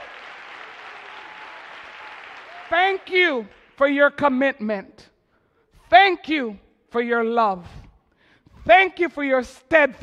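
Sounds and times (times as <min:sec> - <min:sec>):
congregation applauding in a church: 0:00.0 - 0:03.8
speech: 0:02.7 - 0:05.1, 0:05.9 - 0:07.8, 0:08.6 - 0:10.0.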